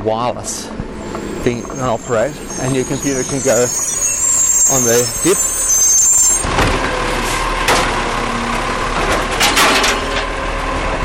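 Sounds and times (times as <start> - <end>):
speech: 0.0 - 3.9, 4.7 - 5.7
brief high-pitched whine of a garbage truck: 0.4 - 7.2
heavy garbage truck engine rumbling in Australia: 0.7 - 11.0
bins clanking and banging as a garbage truck's mechanical arm empties them: 9.1 - 10.3.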